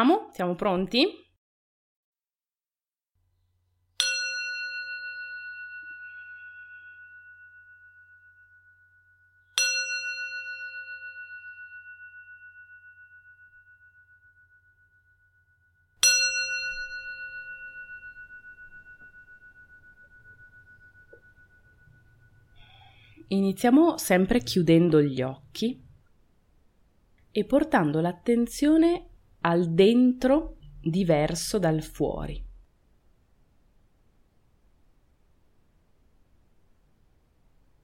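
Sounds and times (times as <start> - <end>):
speech: 0.0 - 1.2, 23.3 - 25.8, 27.4 - 32.4
meditation bell struck to begin a guided eating meditation: 4.0 - 23.1.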